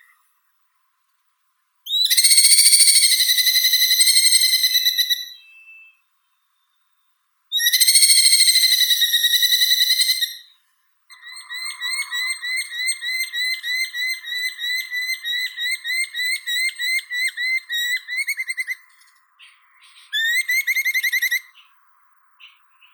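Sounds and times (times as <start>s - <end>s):
merlin Falco columbarius calling: 1.9s - 5.7s, 7.5s - 10.5s, 11.1s - 21.7s.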